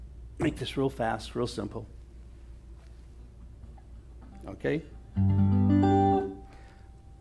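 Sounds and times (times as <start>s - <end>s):
speech: 0.4s - 2.0s, 4.6s - 5.4s
single guitar chord strummed dry: 5.1s - 6.7s.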